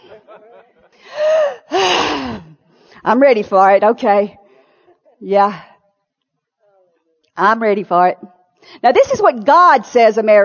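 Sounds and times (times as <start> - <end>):
laughter: 0.0 - 1.5
audience taking a deep breath together: 0.9 - 3.0
speech: 3.0 - 4.4, 5.2 - 5.7, 7.4 - 10.4.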